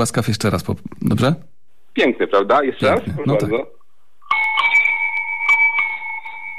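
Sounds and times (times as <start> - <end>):
speech: 0.0 - 3.8
non-electric bicycle bell ringing with a two-tone chime: 4.3 - 6.5.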